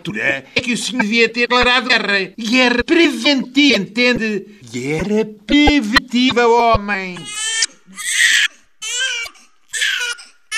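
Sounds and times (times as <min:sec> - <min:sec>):
speech: 0:00.0 - 0:07.4
newborn baby crying inside an ambulance: 0:07.1 - 0:10.5.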